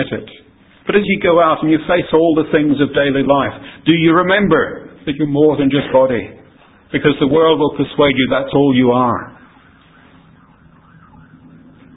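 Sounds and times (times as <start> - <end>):
speech: 0.0 - 9.3
wavering emergency siren passing outside: 9.0 - 11.9
dense city traffic noise: 9.4 - 11.9.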